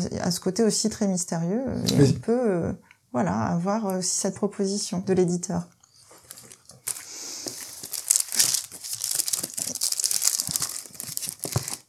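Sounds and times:
speech: 0.0s - 5.8s
paper photographic prints rustling and crinkling while handled: 6.1s - 11.8s.

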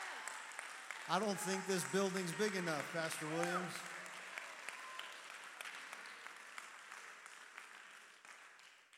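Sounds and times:
standing audience clapping: 0.0s - 8.9s
speech: 1.1s - 3.9s.

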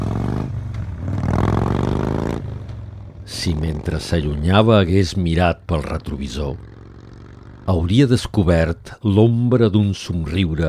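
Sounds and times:
motorcycle engine revving: 0.0s - 4.1s, 5.8s - 7.9s
speech: 3.4s - 6.8s, 7.7s - 10.6s.

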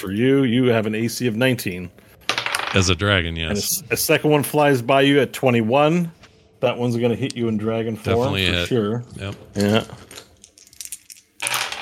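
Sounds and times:
speech: 0.0s - 2.0s, 2.7s - 10.2s
dice clattering and rolling on a hard tabletop: 2.2s - 2.9s, 10.3s - 11.8s.

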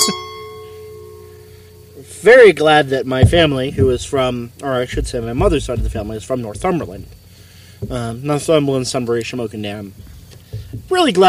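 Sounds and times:
wine glasses clinking in a toast: 0.0s - 1.9s
speech: 2.0s - 7.2s, 7.8s - 10.1s, 10.7s - 11.2s.

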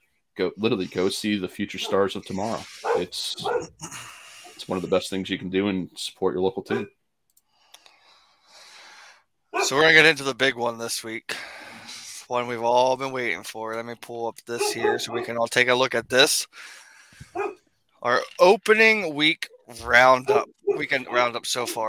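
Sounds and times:
speech: 0.4s - 7.0s, 9.7s - 11.5s, 12.3s - 21.8s
dog barking: 1.8s - 2.1s, 2.8s - 3.8s, 6.7s - 6.9s, 9.6s - 9.8s, 14.6s - 15.4s, 17.4s - 17.6s, 20.2s - 21.8s.

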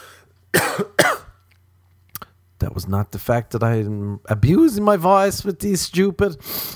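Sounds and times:
person with COVID coughing harshly: 0.6s - 1.4s
speech: 2.7s - 6.7s.

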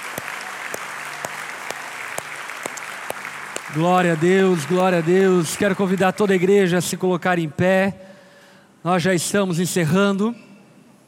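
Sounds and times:
church congregation clapping: 0.0s - 6.7s
speech: 3.7s - 8.1s, 8.8s - 10.5s.

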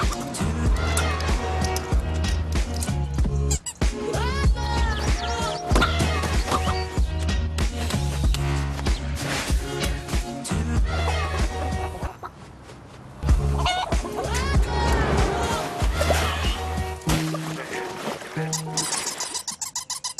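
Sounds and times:
bouncy upbeat music: 0.0s - 12.1s, 13.2s - 20.1s
hens clucking in quick chattering bursts: 11.0s - 12.6s, 13.3s - 16.6s.

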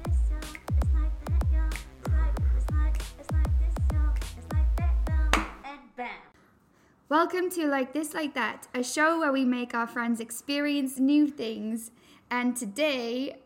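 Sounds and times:
upbeat instrumental intro theme with layered tonal chords: 0.0s - 5.7s
speech: 7.1s - 13.4s.

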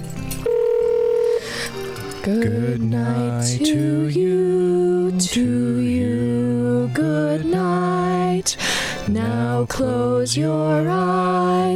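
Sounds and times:
shorter tonal telephone blips on speakerphone: 0.5s - 1.6s
speakerphone call steady electronic telephone beep: 0.5s - 2.1s
quieter phone line sounds: 0.5s - 2.2s
speech: 2.2s - 7.8s, 8.4s - 11.7s.

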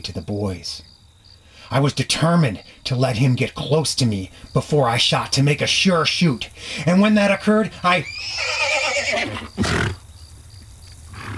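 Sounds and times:
speech: 0.0s - 0.9s, 1.7s - 9.5s
old horse whinnying loudly: 7.8s - 10.0s, 11.1s - 11.3s
old horse snorting: 8.3s - 10.0s, 11.1s - 11.3s.

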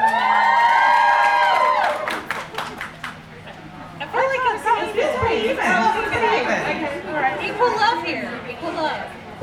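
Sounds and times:
live audience cheering and whooping: 0.0s - 2.6s
people clapping: 0.0s - 3.3s
lively crowd chatter with scattered shouts: 2.4s - 9.4s.

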